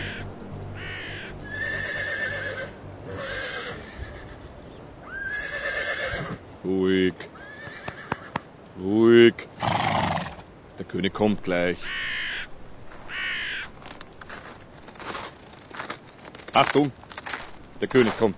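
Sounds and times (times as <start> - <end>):
horse neighing while pulling a sleigh: 0.8 - 6.4, 7.4 - 8.4, 9.6 - 10.4
speech: 6.6 - 7.4, 8.8 - 9.6, 10.9 - 12.1, 16.6 - 17.1, 17.8 - 18.3.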